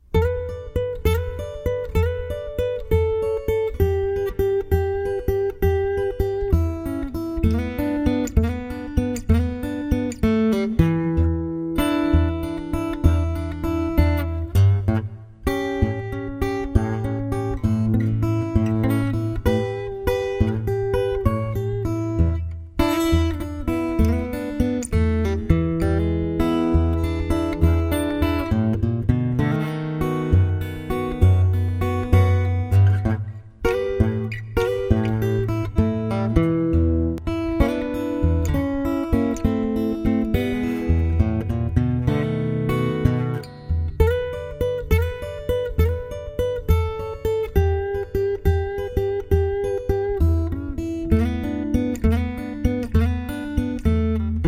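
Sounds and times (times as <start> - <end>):
dead thumb fingerstyle guitar with chorus effect: 0.0 - 54.4.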